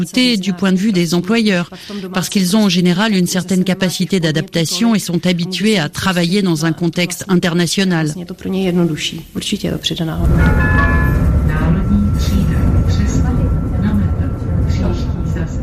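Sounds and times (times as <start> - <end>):
speech: 0.0 - 11.0
tram in Prague rumbling past on its rails with a metallic whine: 9.4 - 15.6.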